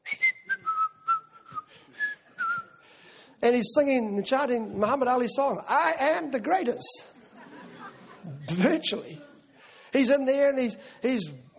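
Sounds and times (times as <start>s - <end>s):
person whistling a simple tune: 0.0s - 2.8s
speech: 3.4s - 7.2s, 8.6s - 9.3s, 10.0s - 11.4s
laughter: 7.0s - 9.6s.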